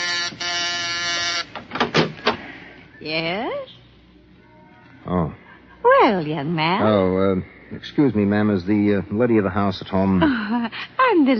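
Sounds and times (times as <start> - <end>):
door creaking open: 0.0 - 2.4
speech: 3.0 - 3.7, 6.1 - 11.3.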